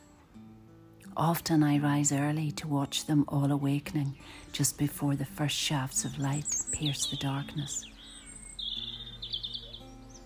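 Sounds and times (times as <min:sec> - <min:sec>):
speech: 0:01.1 - 0:07.9
pre-dawn birdsong from robins, blackbirds, blue tits and starlings: 0:03.7 - 0:10.2.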